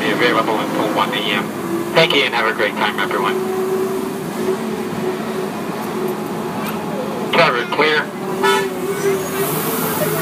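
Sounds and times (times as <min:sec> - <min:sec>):
broad road noise: 0:00.0 - 0:10.2
theme park parking tram moving: 0:00.0 - 0:10.2
speech: 0:00.2 - 0:03.6, 0:07.3 - 0:08.2.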